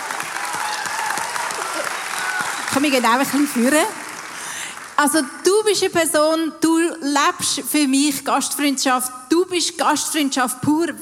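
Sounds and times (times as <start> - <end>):
audience clapping for a guest on stage: 0.0 - 5.6
speech: 2.8 - 4.0, 5.0 - 11.0.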